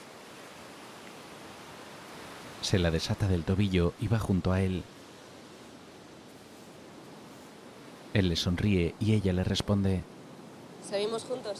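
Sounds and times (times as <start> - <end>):
ocean surf washing on a beach: 0.0 - 11.5
speech: 2.6 - 5.0, 8.2 - 10.2, 10.9 - 11.5.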